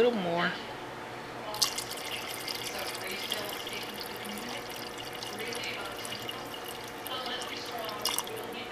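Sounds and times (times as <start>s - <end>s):
speech: 0.0s - 0.8s
water pouring into a crock pot of beans and lentils: 1.5s - 8.6s.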